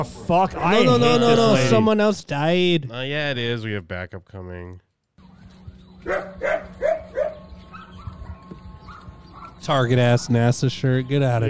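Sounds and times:
speech: 0.0s - 4.8s, 6.0s - 7.0s, 9.6s - 11.4s
faint tonal sounds: 0.0s - 11.4s
dog barking: 6.0s - 9.6s.

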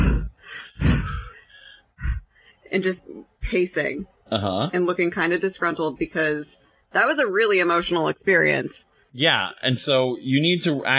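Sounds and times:
person imitating heavy controlled breathing: 0.0s - 2.7s
speech: 2.7s - 10.9s.

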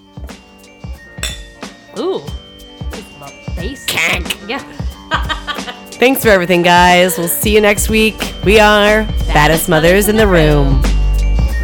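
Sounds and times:
glasses clinking together in a toast: 1.0s - 2.0s
speech: 2.0s - 2.4s, 3.2s - 10.9s
laughter: 5.0s - 5.9s.

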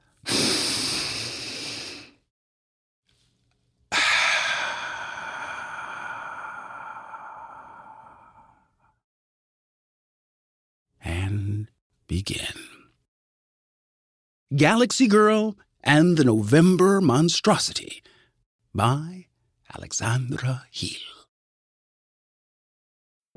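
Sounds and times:
slow deep breath with airy inhale and long steady exhale: 0.0s - 2.3s, 3.9s - 9.0s, 18.0s - 18.4s
speech: 12.1s - 12.6s, 14.5s - 18.1s, 18.8s - 21.2s.

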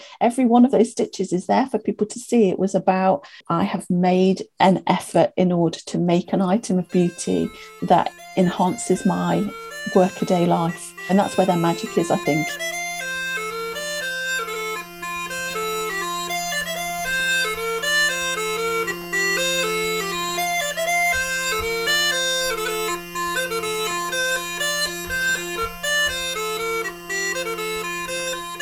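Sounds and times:
speech: 0.2s - 12.8s
two steady low drones of Northumbrian pipes: 6.3s - 28.6s.

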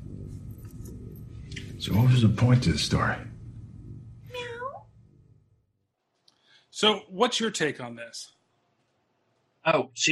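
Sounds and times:
low rumble: 0.0s - 5.7s
speech: 1.8s - 3.3s, 6.8s - 8.4s, 9.6s - 10.1s
woman imitating a cat meowing: 4.3s - 4.8s.

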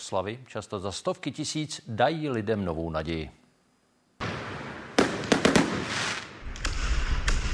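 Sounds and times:
speech: 0.0s - 3.4s
New Year's fireworks banging and crackling: 4.2s - 7.5s
fireworks explosions rumbling: 4.2s - 7.5s.

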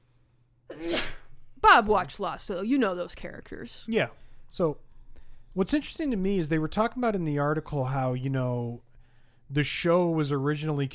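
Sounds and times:
person sneezing: 0.7s - 1.3s
speech: 1.6s - 4.9s, 5.6s - 8.9s, 9.5s - 10.9s.

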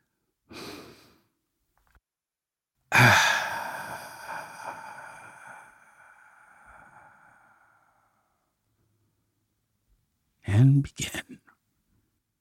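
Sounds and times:
long sighing exhale: 0.5s - 1.2s, 2.9s - 8.4s
deep breath: 0.5s - 1.4s, 2.9s - 8.6s
speech: 3.0s - 3.3s, 10.8s - 11.5s.

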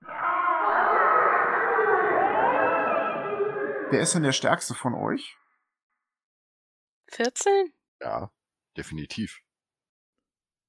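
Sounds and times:
crowd of people screaming and wailing: 0.0s - 4.3s
speech: 3.9s - 5.4s, 7.1s - 9.4s.

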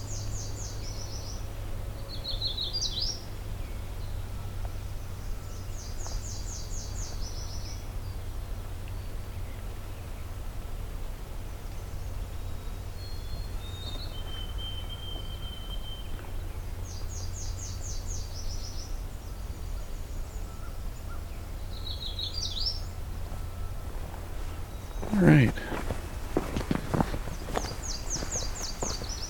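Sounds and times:
Nashville warbler singing high quick trilled phrases: 0.0s - 10.4s, 11.8s - 29.2s
steady low rumble: 6.7s - 29.2s
footsteps: 23.2s - 29.2s
speech: 25.2s - 25.7s.

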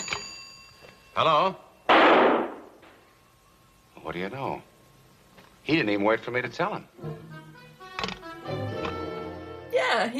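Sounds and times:
speech: 1.2s - 2.4s, 4.0s - 4.7s, 5.6s - 7.4s, 9.9s - 10.1s
gunshot: 1.9s - 2.7s.

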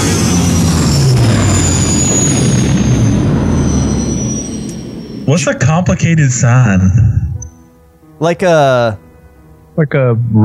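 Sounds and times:
giant spacecraft engines roaring and whining: 0.0s - 7.5s
speech: 5.3s - 7.1s, 8.2s - 9.0s, 9.8s - 10.4s.

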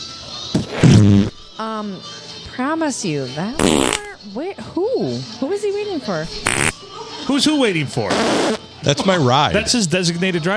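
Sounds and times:
recorded fart noise: 0.5s - 1.5s, 3.6s - 4.2s, 6.4s - 6.8s, 8.1s - 8.6s
speech: 0.5s - 10.5s.

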